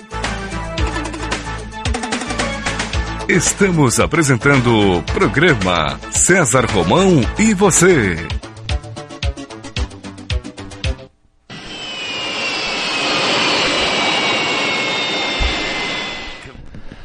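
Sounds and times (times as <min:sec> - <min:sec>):
rhythmic music: 0:00.0 - 0:11.0
speech: 0:03.3 - 0:08.5
jet airplane engine roaring with a high whine: 0:11.5 - 0:16.6.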